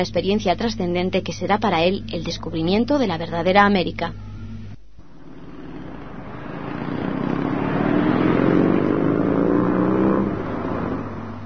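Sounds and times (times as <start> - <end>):
speech: 0.0 - 4.3
motorcycle engine revving: 4.6 - 11.4.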